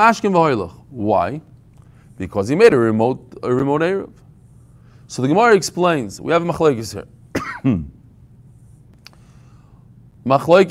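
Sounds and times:
speech: 0.0s - 1.5s, 2.2s - 4.2s, 5.1s - 8.0s, 10.2s - 10.7s
throat clearing from something stuck in the throat: 7.4s - 8.0s.

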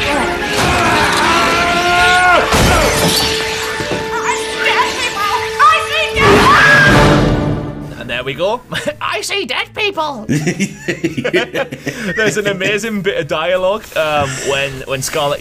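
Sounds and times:
parrot death scream as a spider kills it: 0.0s - 7.1s
speech: 8.3s - 15.3s
laughter: 10.3s - 13.2s.

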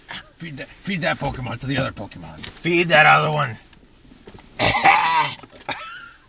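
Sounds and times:
speech: 0.4s - 3.7s
loud raspy hacking cough: 4.6s - 5.9s.

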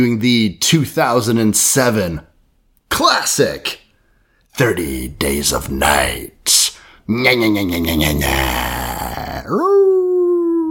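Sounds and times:
speech: 0.0s - 2.3s, 2.9s - 3.8s, 4.6s - 10.0s
person's voice imitating a vampire's howl: 7.4s - 10.6s.

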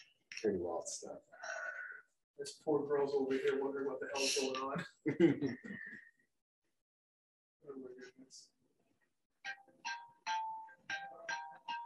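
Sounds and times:
speech: 0.4s - 1.5s, 2.4s - 6.1s, 7.6s - 8.6s
cell phone ringing with bright electronic chiming notes: 9.4s - 11.8s.

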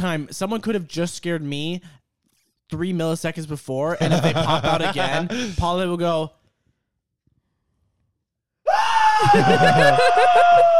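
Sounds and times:
speech: 0.0s - 2.0s, 2.7s - 6.4s, 9.2s - 10.7s
laughter: 4.0s - 5.4s, 9.2s - 10.7s
imitated bloodcurdling scream: 8.7s - 10.7s.

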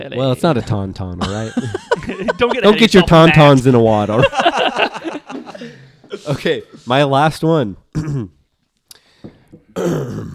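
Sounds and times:
speech: 0.0s - 4.4s, 6.3s - 8.4s, 9.8s - 10.3s
laughter: 1.2s - 6.9s
breaths: 5.5s - 6.9s, 8.9s - 9.8s
loud raspy throat clearing: 7.9s - 8.4s, 9.7s - 10.3s.

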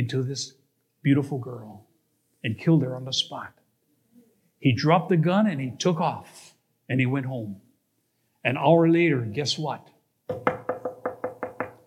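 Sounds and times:
speech: 0.0s - 3.6s, 4.6s - 7.6s, 8.4s - 10.6s
firm knocks on a wooden door: 10.3s - 11.8s.

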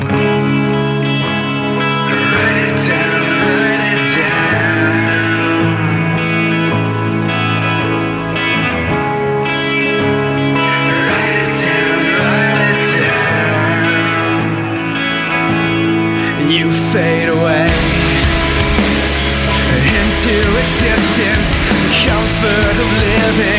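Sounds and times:
rock song from an EP playing: 0.0s - 23.5s.

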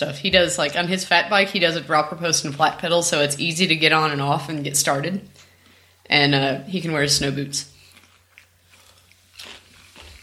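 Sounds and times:
speech: 0.0s - 5.4s, 6.1s - 7.7s
low steady hum: 0.0s - 10.2s
crunchy food being chewed: 7.7s - 10.2s.

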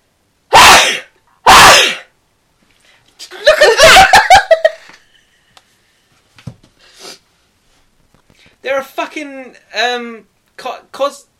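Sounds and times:
person sneezing: 0.5s - 2.1s
laughter: 3.3s - 4.9s
speech: 8.8s - 11.3s.

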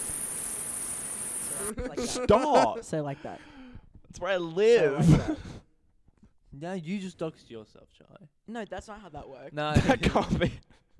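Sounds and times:
crickets chirping in a steady high-pitched drone: 0.0s - 1.7s
speech: 1.6s - 3.5s, 4.1s - 5.6s, 6.6s - 10.8s.

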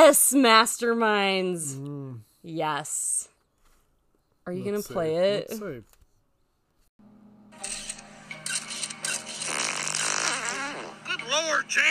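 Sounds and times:
speech: 0.1s - 3.3s, 4.5s - 6.0s, 11.3s - 11.9s
long loud raspy fart: 9.3s - 11.1s.

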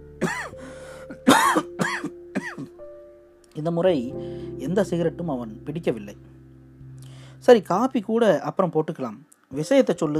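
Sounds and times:
person coughing harshly: 0.2s - 2.8s
speech: 3.6s - 6.3s, 7.4s - 10.1s.

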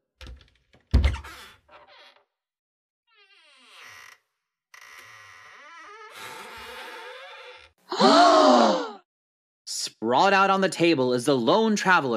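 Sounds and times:
door creaking open: 0.2s - 2.4s, 3.1s - 7.8s
speech: 10.1s - 12.1s.

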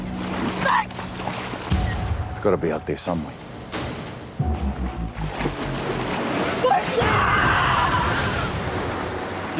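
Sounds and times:
water splashing in a film trailer: 0.0s - 1.9s, 5.1s - 9.5s
speech: 2.4s - 3.4s
people screaming frantically in a film trailer: 6.6s - 8.6s.

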